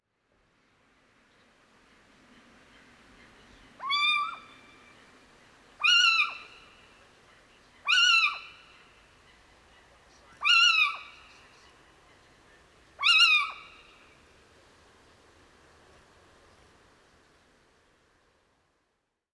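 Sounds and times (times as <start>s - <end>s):
Little Owl Athene noctua calling: 3.8s - 4.8s, 5.8s - 6.9s, 7.8s - 8.8s, 10.4s - 11.4s, 13.0s - 14.0s.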